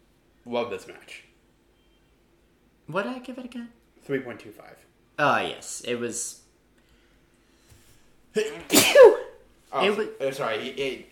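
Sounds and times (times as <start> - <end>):
speech: 0.4 - 1.3, 2.9 - 6.4, 8.4 - 11.1
person sneezing: 8.7 - 9.4.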